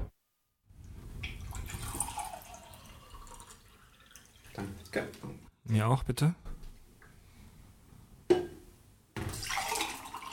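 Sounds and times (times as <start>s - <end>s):
water pouring into a glass: 1.2s - 5.0s, 9.3s - 10.3s
speech: 4.6s - 6.5s.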